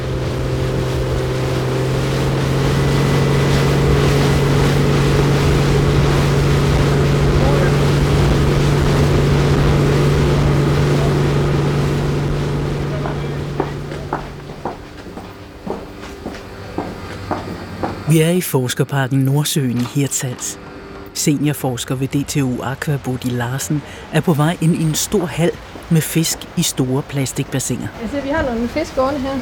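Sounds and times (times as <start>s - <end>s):
water rushing and splashing around the motorboat hull: 0.0s - 18.4s, 19.6s - 29.4s
motorboat engine droning on the sea: 0.0s - 29.4s
knocks and clatters: 13.0s - 18.1s
speech: 18.2s - 29.4s.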